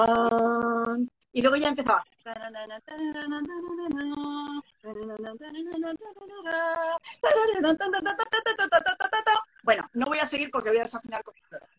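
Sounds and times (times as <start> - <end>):
lone voice humming a dramatic orchestral opening: 0.0 - 1.1, 2.3 - 9.4
speech: 1.4 - 8.9, 9.6 - 11.6.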